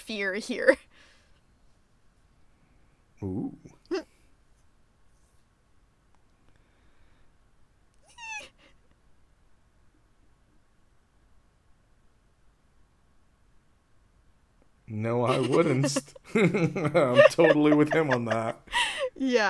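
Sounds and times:
speech: 0.0s - 1.1s, 3.2s - 4.1s, 14.9s - 19.4s
faint hiss: 0.8s - 19.4s
cat meowing: 8.0s - 8.7s
laughter: 15.1s - 19.1s.

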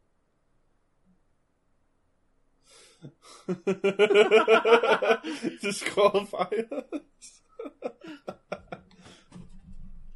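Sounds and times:
speech: 3.0s - 8.4s
laughter: 3.3s - 8.9s
heavy breathing against the microphone: 5.2s - 5.6s, 8.0s - 9.4s.

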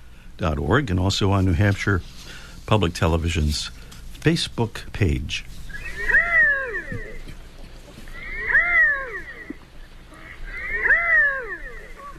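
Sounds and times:
speech: 0.4s - 5.6s
redhead duck giving nasal cat-like meowing calls: 5.7s - 7.4s, 8.0s - 12.1s.

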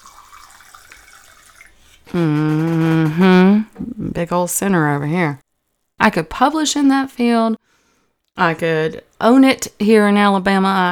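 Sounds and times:
wine pouring into a glass: 0.0s - 3.8s
speech: 2.1s - 2.6s, 4.2s - 5.4s, 6.0s - 7.7s, 8.4s - 10.9s.

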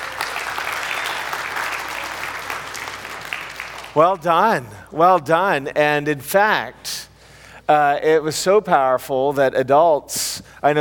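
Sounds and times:
audience applauding: 0.0s - 4.0s
speech: 4.0s - 7.0s, 7.7s - 10.7s.

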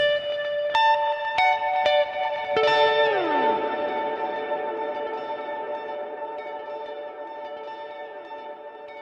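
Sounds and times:
plucked guitar through a ping-pong delay effect: 0.0s - 9.0s.

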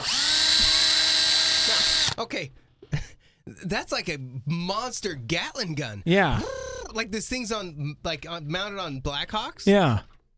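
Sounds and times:
high-pitched drill whining: 0.0s - 2.2s
speech: 2.2s - 2.6s, 3.5s - 10.1s.

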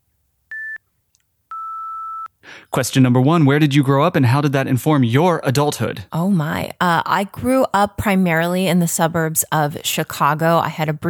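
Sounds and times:
electronic beeps marking time in a timed interview game: 0.5s - 0.8s, 1.5s - 2.3s
speech: 2.5s - 11.0s.

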